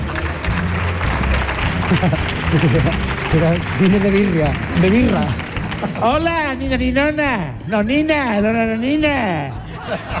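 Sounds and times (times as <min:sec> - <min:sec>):
crowd applauding: 0:00.0 - 0:06.6
laughter: 0:01.6 - 0:04.1, 0:05.7 - 0:06.2, 0:09.4 - 0:10.1
speech: 0:01.9 - 0:10.1.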